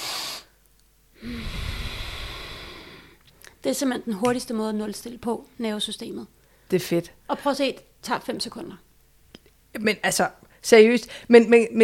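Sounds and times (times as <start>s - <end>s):
person doing a double inhale through the nose in a physiological sigh: 0.0s - 0.6s, 1.2s - 3.6s
longer steady breathy exhale of a physiological sigh: 1.2s - 3.3s
speech: 3.6s - 8.8s, 9.7s - 11.8s.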